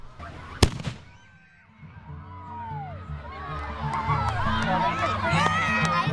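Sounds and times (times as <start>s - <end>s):
murmur of crowd voices and chatter: 0.0s - 6.1s
cannon boom: 0.6s - 1.3s.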